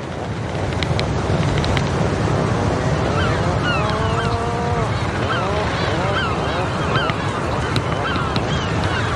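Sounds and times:
sea hawks tapping beaks in greeting: 0.0 - 2.0, 3.0 - 9.1
wind and surf on a breeding island off western Europe: 0.0 - 9.1
sea hawks giving honking grunts and rising squawks: 2.9 - 9.1.

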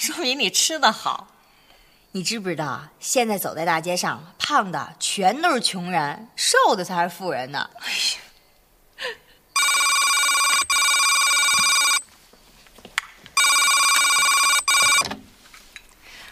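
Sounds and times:
speech: 0.0 - 1.4, 2.1 - 8.3
faint room sounds: 0.0 - 16.2
telephone ringing with bright electronic tone: 9.6 - 12.1, 13.4 - 15.1.

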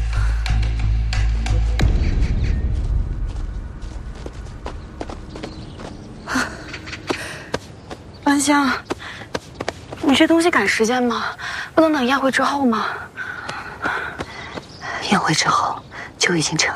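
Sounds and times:
low rumble: 0.0 - 8.3
footsteps of people hurrying away: 2.5 - 10.3
speech: 8.4 - 8.9, 10.0 - 13.0, 15.1 - 16.7.

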